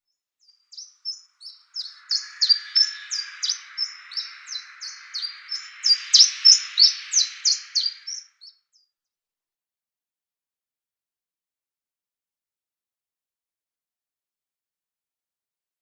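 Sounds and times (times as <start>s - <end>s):
mountain chiffchaff singing: 1.4s - 8.3s.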